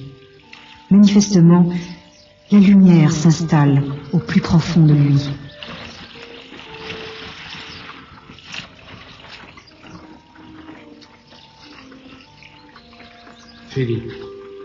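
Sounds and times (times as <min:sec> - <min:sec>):
speech: 0:00.9 - 0:05.7, 0:13.8 - 0:14.2
river water rushing and gurgling: 0:04.8 - 0:10.6.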